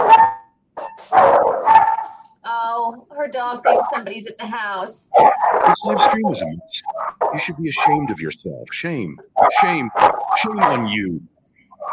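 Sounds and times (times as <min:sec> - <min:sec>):
dog barking: 0:00.0 - 0:02.2, 0:03.6 - 0:04.0, 0:05.1 - 0:08.4, 0:09.4 - 0:11.2
speech: 0:03.3 - 0:11.3
laughter: 0:05.7 - 0:06.8, 0:07.4 - 0:11.2.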